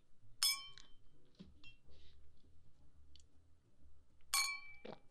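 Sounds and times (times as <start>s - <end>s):
glasses clinking in a toast: 0.5s - 0.9s, 4.3s - 4.9s.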